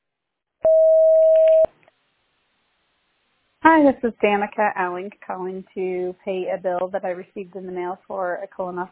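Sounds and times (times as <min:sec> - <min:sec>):
voicemail recording beep: 0:00.6 - 0:01.7
speech: 0:03.8 - 0:08.9.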